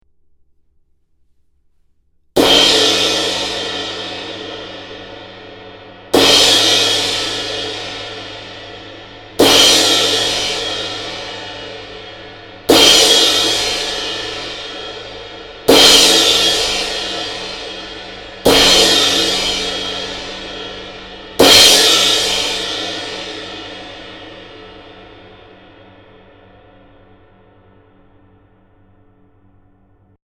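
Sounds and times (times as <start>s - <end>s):
20-inch crash cymbal: 2.4s - 30.2s.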